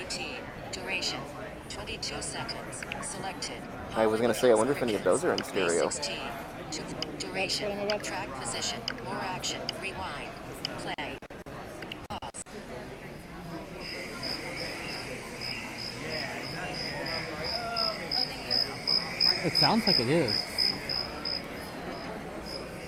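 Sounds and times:
speech: 0:01.0 - 0:11.2, 0:19.4 - 0:20.5
crickets chirping outdoors: 0:13.8 - 0:22.8.

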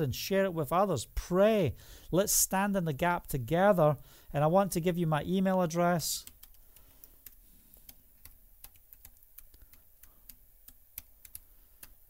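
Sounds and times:
speech: 0:00.0 - 0:06.3
typing on a computer keyboard: 0:06.2 - 0:12.0.

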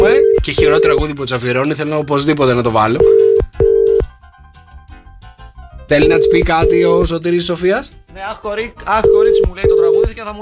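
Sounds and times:
telephone ringing tone on an outgoing call: 0:00.0 - 0:01.2, 0:03.0 - 0:04.1, 0:06.0 - 0:07.0, 0:09.0 - 0:10.2
speech: 0:00.4 - 0:03.6, 0:05.9 - 0:10.4.

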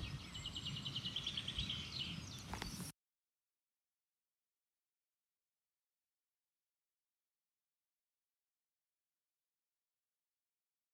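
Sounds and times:
bird chirping outdoors in repeated high notes: 0:00.0 - 0:02.9.

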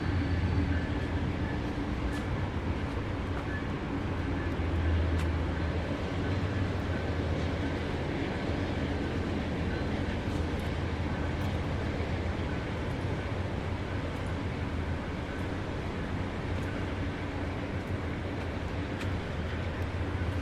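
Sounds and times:
trains rolling past on either side: 0:00.0 - 0:20.4.

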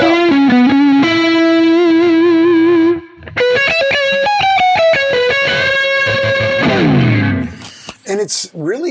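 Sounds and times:
PRS electric guitar playing heavily distorted with chorus-like shimmer: 0:00.0 - 0:07.6
speech: 0:08.2 - 0:08.9.

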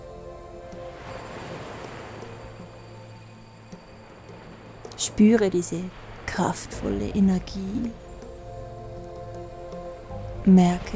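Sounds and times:
ocean waves crashing and churning in surf: 0:00.4 - 0:08.8
wind gusting over the surf: 0:00.9 - 0:08.8
speech: 0:05.0 - 0:08.0, 0:10.4 - 0:10.9.

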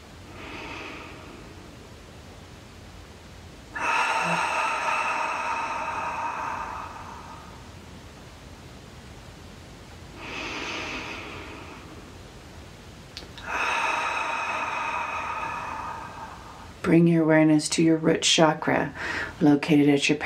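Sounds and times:
slow deep breaths during a relaxing meditation: 0:00.0 - 0:02.0, 0:03.6 - 0:08.0, 0:10.0 - 0:12.3, 0:13.2 - 0:16.8, 0:19.0 - 0:19.4
speech: 0:16.9 - 0:20.2.

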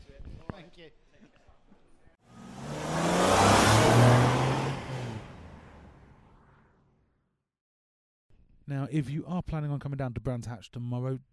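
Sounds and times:
speech: 0:00.7 - 0:01.9, 0:08.8 - 0:11.3
single-seater racing cars passing on track: 0:02.3 - 0:06.3.

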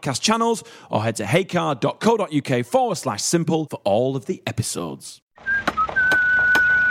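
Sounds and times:
speech: 0:00.0 - 0:05.2
builder whistling a high note while working: 0:05.4 - 0:06.9
sharp rhythmic knocks: 0:05.6 - 0:06.9.

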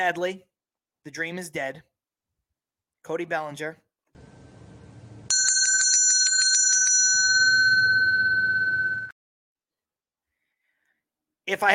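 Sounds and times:
speech: 0:00.0 - 0:01.9, 0:03.0 - 0:03.8, 0:11.5 - 0:11.7
bright bell struck and ringing: 0:05.3 - 0:09.1.

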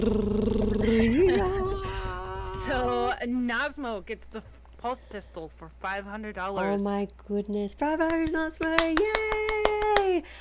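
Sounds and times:
speech: 0:00.0 - 0:00.5, 0:03.2 - 0:09.6, 0:10.2 - 0:10.3
voice imitating a drum roll with a rolled-tongue trill: 0:00.0 - 0:03.2.

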